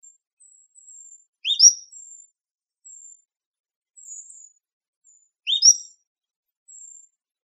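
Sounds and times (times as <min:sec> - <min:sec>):
Cordilleran flycatcher calling in Arizona: 0:01.4 - 0:02.0, 0:05.5 - 0:05.8.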